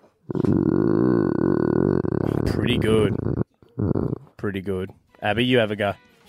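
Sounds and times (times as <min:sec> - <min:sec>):
person imitating a growling bear: 0:00.2 - 0:04.4
speech: 0:00.3 - 0:01.1, 0:02.6 - 0:03.4, 0:04.4 - 0:06.0.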